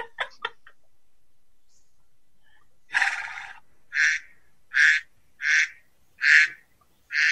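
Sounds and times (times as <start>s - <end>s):
duck quacking: 2.9s - 7.3s.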